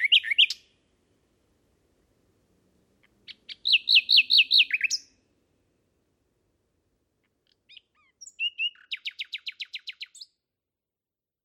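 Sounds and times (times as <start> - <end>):
male common nightingale singing at night in Kent England: 0.0 - 10.5.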